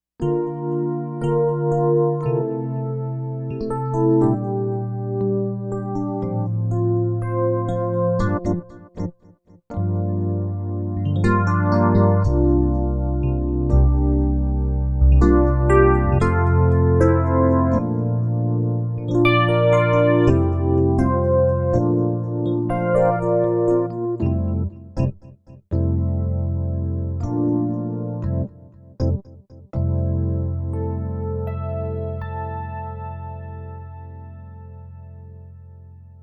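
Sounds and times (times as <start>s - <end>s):
FM electric piano: 0.2s - 9.1s, 9.7s - 36.2s.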